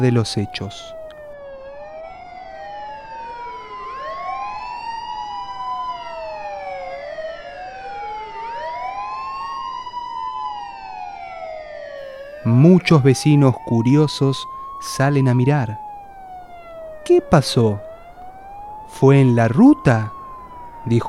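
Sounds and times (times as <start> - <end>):
speech: 0.0 - 1.0, 12.5 - 15.8, 17.1 - 17.9, 18.9 - 20.2, 20.8 - 21.0
faint road rumble: 0.0 - 1.5, 12.0 - 21.0
ambulance sirens wailing: 0.0 - 21.0.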